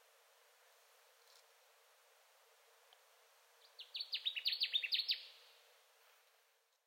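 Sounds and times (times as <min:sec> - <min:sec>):
Connecticut warbler song: 0:03.6 - 0:05.6.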